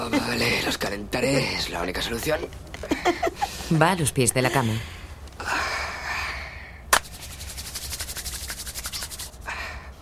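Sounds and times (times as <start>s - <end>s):
speech: 0.1s - 5.0s
hands rubbing and massaging a foot in bed: 7.0s - 9.5s.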